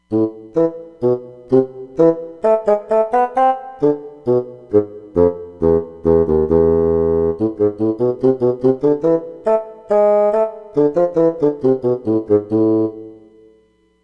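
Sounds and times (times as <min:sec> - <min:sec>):
bassoon on a synthesizer: 0:00.1 - 0:13.5.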